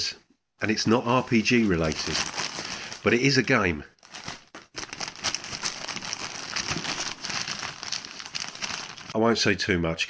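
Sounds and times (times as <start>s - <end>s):
speech: 0.0s - 2.4s, 3.0s - 3.9s, 9.2s - 10.0s
plastic packaging of a board game crinkling: 1.1s - 9.2s.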